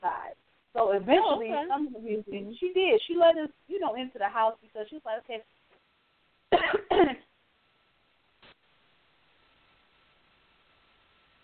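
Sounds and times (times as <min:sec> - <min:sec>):
speech: 0:00.9 - 0:05.6, 0:06.6 - 0:07.2
harsh raspy coughs: 0:06.5 - 0:07.3.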